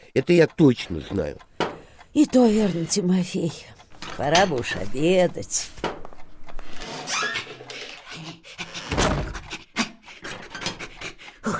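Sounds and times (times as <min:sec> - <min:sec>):
heavy rapid panting after running: 0:00.0 - 0:03.8, 0:07.6 - 0:11.5
speech: 0:00.2 - 0:01.5, 0:02.1 - 0:05.9.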